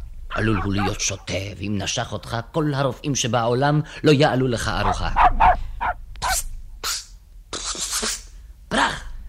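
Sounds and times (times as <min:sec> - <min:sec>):
dog barking and snarling: 0:00.3 - 0:01.1, 0:04.8 - 0:06.4
speech: 0:00.4 - 0:05.4.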